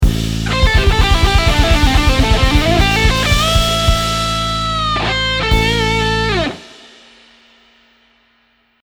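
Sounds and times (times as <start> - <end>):
guitar ending phrase: 0.4 - 6.7.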